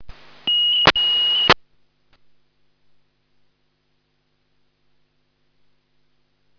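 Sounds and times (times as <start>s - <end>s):
signal tone: 0.0s - 1.6s.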